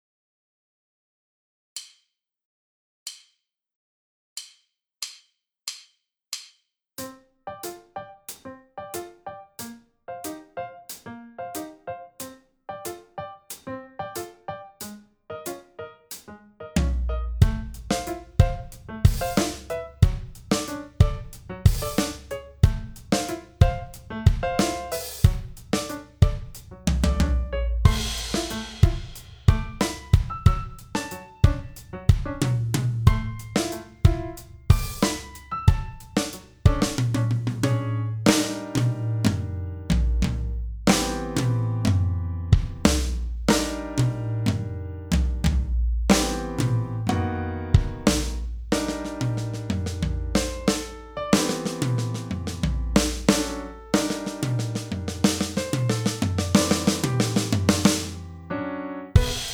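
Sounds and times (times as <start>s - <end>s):
piano: 7.0s - 59.5s
drum kit: 10.9s - 12.4s, 13.5s - 16.2s, 16.8s - 58.3s, 59.2s - 59.5s.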